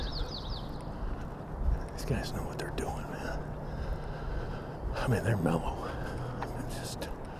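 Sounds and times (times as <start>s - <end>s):
birds chirping in the morning: 0.0s - 7.3s
speech: 2.0s - 3.7s, 4.9s - 6.1s.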